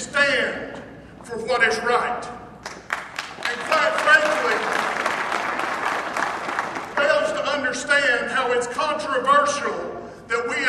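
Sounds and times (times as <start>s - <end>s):
speech: 1.3s - 2.4s, 7.8s - 10.6s
crowd of Republican delegates cheering: 2.9s - 7.4s.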